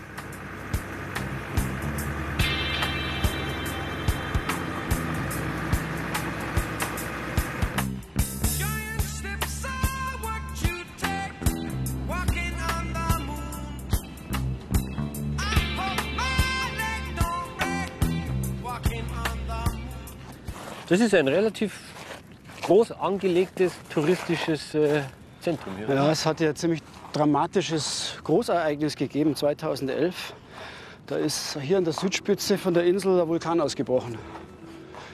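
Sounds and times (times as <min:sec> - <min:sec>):
steady low car engine rumble inside a moving car: 0:00.0 - 0:21.0
road noise from inside a moving car: 0:00.0 - 0:35.1
speech: 0:20.9 - 0:21.9, 0:22.7 - 0:30.4, 0:31.1 - 0:34.5.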